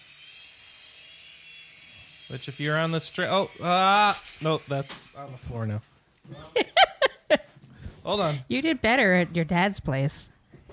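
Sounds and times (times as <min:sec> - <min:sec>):
small remote control toy helicopter rotor whirring with motor whine: 0:00.0 - 0:05.6
speech: 0:02.3 - 0:06.7, 0:08.0 - 0:10.3
laughter: 0:06.4 - 0:07.5.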